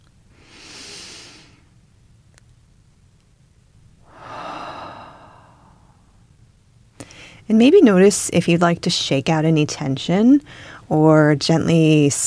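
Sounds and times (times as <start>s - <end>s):
faint steady hiss: 0.0s - 12.2s
person taking a slow deep breath during a calm embodied-peace practice: 0.3s - 1.7s, 4.0s - 6.3s
speech: 7.5s - 12.2s.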